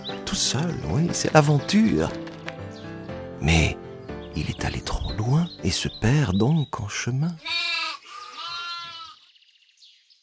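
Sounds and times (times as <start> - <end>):
speech: 0.4 - 2.3, 3.4 - 3.8, 4.4 - 7.7
single sheep bleating: 7.4 - 9.2.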